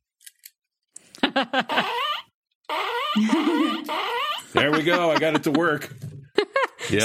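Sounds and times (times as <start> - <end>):
laughter: 1.2 - 2.0, 3.2 - 7.0
speech: 1.4 - 1.9, 3.2 - 6.1
cartoonish fart sound effects: 1.7 - 5.0.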